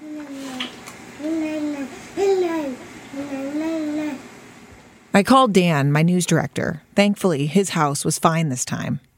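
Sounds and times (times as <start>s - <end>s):
baby babbling and cooing: 0.0s - 4.3s
speech: 5.2s - 9.1s.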